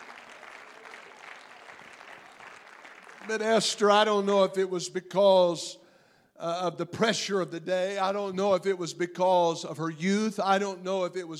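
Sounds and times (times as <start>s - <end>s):
crowd clapping hands in praise: 0.0s - 4.0s
speech: 3.2s - 5.8s, 6.4s - 11.3s.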